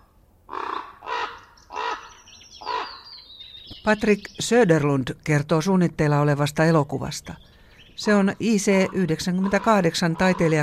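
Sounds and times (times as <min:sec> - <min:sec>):
bird giving harsh raspy caws: 0:00.0 - 0:03.7, 0:08.8 - 0:10.6
speech: 0:03.8 - 0:10.6.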